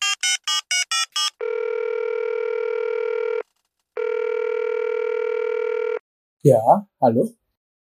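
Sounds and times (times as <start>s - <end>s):
telephone dialing tones: 0.0s - 6.0s
speech: 6.4s - 7.4s.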